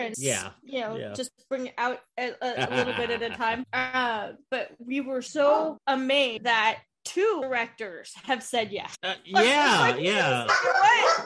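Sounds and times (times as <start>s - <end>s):
speech: 0.0s - 11.2s
laughter: 2.4s - 3.7s
dog barking: 10.4s - 11.2s.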